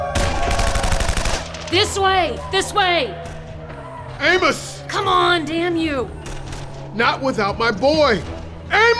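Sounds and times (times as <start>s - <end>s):
soldiers' gunfire volley: 0.2s - 1.7s
speech: 1.7s - 3.3s, 4.2s - 6.2s, 6.9s - 8.9s.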